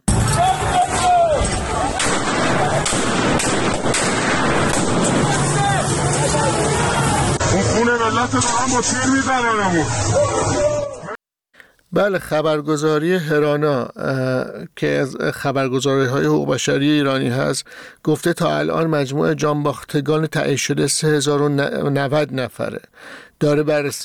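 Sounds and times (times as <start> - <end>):
gunfire from government forces shooting at protesters on a Tehran street: 0.0 - 7.6
loud hissing crowd din of protesters: 0.0 - 11.2
people shouting and wailing: 0.1 - 3.4, 4.7 - 11.2
speech: 8.2 - 10.6, 11.9 - 24.0.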